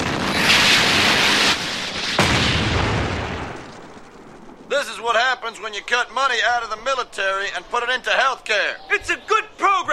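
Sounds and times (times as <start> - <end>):
Sidewinder missile launch roar: 0.0 - 3.7
sharp crack: 0.0 - 4.1
speech: 5.0 - 9.9.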